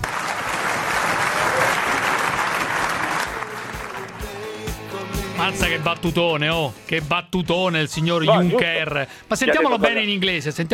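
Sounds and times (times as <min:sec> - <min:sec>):
applause in a parliament chamber: 0:00.0 - 0:04.8
speech: 0:05.5 - 0:10.7.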